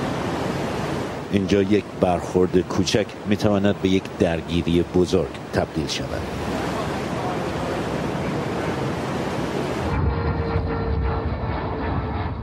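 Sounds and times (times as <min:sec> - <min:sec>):
wind and sea noise: 0:00.0 - 0:12.4
speech: 0:01.3 - 0:06.5
navy aircraft roaring low over a ship: 0:08.2 - 0:12.4.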